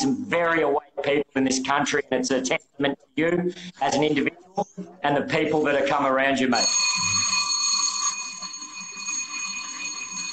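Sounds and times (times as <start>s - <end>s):
speech: 0.0s - 7.1s
fire alarm bell ringing: 6.6s - 10.3s.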